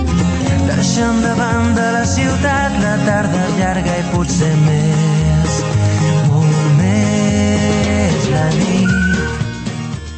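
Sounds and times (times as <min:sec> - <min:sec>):
full band arrangement: 0:00.0 - 0:10.1
speech: 0:01.0 - 0:06.0
catchy whistled melody: 0:08.7 - 0:10.1.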